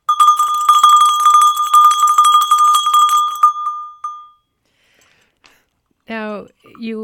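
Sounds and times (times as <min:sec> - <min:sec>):
small early style hand bell ringing: 0:00.0 - 0:04.4
speech: 0:06.7 - 0:07.0.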